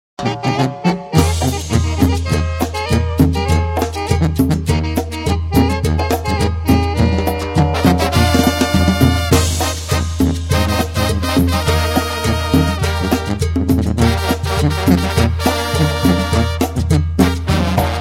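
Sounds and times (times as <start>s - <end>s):
tamborazo brass band playing: 0.2s - 18.0s.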